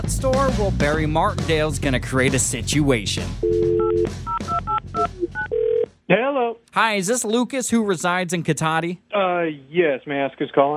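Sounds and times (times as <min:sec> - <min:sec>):
speech: 0:00.1 - 0:04.4, 0:06.1 - 0:10.7
touch-tone telephone dialing beeps: 0:03.4 - 0:05.8.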